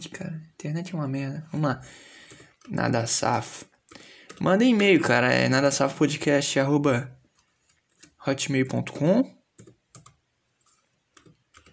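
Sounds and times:
speech: 0.0s - 2.1s, 2.7s - 3.7s, 4.4s - 7.2s, 8.2s - 9.4s
one-handed typing on a computer keyboard: 2.2s - 2.8s, 3.9s - 5.0s, 9.6s - 11.7s.

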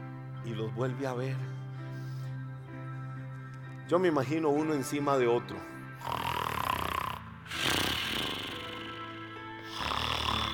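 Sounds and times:
speech: 0.4s - 1.6s, 3.9s - 6.2s
loud rumbling snoring: 6.0s - 10.5s.

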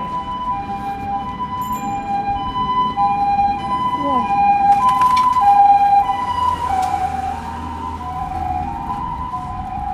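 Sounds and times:
ambulance and police car sirens wailing: 0.0s - 9.9s
low rumble of street traffic: 0.0s - 9.9s.

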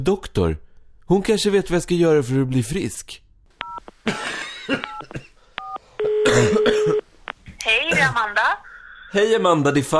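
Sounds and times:
speech: 0.0s - 3.2s, 4.0s - 5.2s, 6.2s - 7.0s, 7.7s - 9.9s
telephone keypad beeps while dialing: 3.6s - 3.8s, 4.8s - 7.0s
steady telephone tone: 5.6s - 7.0s.

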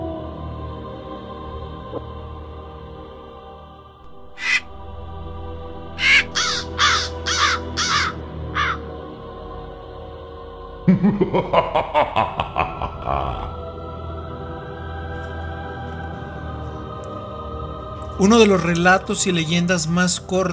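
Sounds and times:
speech: 1.9s - 2.2s, 11.0s - 12.4s, 18.2s - 20.5s
crow cawing: 4.3s - 4.8s, 6.0s - 8.9s
laughter: 10.9s - 13.6s.

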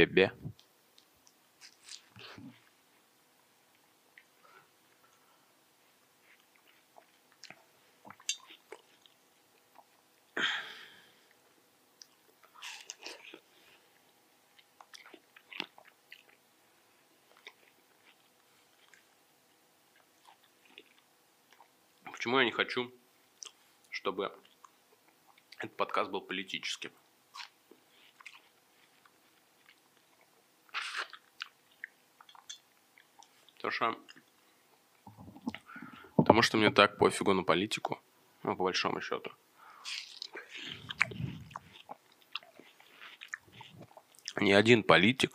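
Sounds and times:
speech: 0.0s - 0.4s, 22.2s - 23.0s, 24.0s - 24.4s, 25.6s - 27.0s, 33.6s - 34.2s, 36.3s - 40.0s, 44.4s - 45.3s
wet chewing and crunchy biting into juicy watermelon: 6.2s - 10.4s, 12.0s - 19.2s, 19.9s - 22.2s, 27.3s - 35.7s, 39.8s - 44.5s.

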